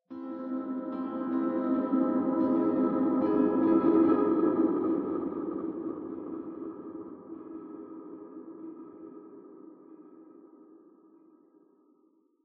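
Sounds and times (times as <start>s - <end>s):
piano: 0.1s - 9.6s.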